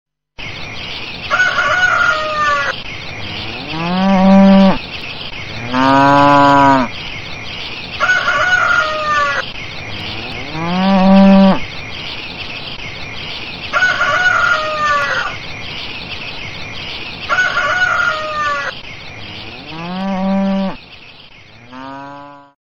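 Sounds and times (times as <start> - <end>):
rooster crowing: 1.3 - 2.8, 8.0 - 9.4, 13.7 - 15.4, 17.3 - 18.8
cow mooing: 3.3 - 4.8, 5.6 - 6.9, 10.0 - 11.6, 19.2 - 20.8, 21.6 - 22.5.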